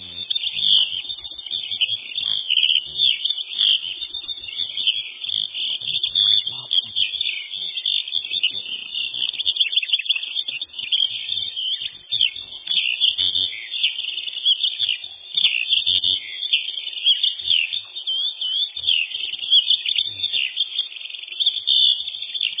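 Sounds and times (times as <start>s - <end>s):
Eurasian skylark Alauda arvensis song with rapid warble of trills and twitters: 0.0s - 22.5s.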